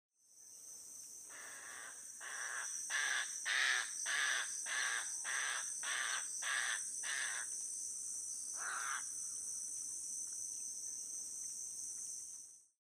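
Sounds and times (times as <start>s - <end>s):
little blue heron Egretta caerulea giving harsh croaking calls: 1.3s - 7.5s, 8.6s - 9.1s.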